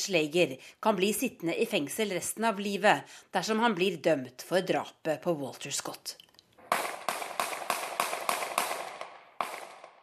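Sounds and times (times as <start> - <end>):
speech: 0.0 - 6.2
pistol shots: 6.7 - 10.0.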